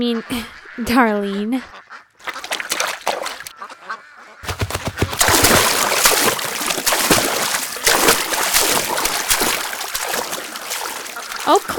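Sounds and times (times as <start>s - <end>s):
speech: 0.0s - 1.8s, 11.5s - 11.7s
water splashing and churning: 2.2s - 3.5s, 4.4s - 11.7s
object plunging into water with a big splash: 4.4s - 11.6s.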